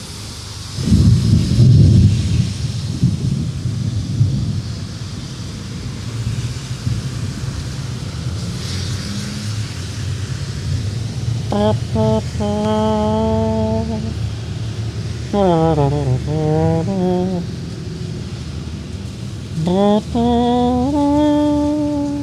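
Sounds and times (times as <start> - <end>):
steady rain: 0.0 - 22.2
deep rolling thunder: 0.8 - 8.4
speech: 11.6 - 13.1, 15.3 - 17.6, 19.6 - 21.8.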